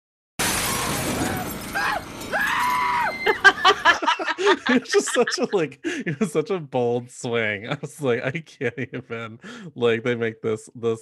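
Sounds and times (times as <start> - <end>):
glass breaking crash: 0.4 - 4.0
woman screaming in horror film scene: 0.7 - 3.9
laughter: 3.2 - 6.4, 7.8 - 9.4
speech: 4.4 - 11.0.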